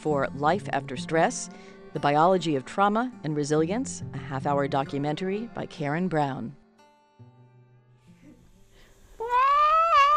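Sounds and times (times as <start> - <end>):
speech: 0.0 - 6.6
male cat meowing: 9.2 - 10.1.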